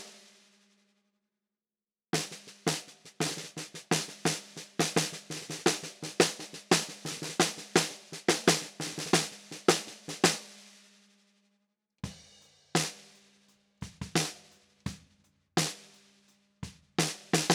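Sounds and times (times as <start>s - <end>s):
13x6 inch maple snare drum with low tuning: 2.2s - 10.6s, 13.9s - 15.9s, 17.0s - 17.5s.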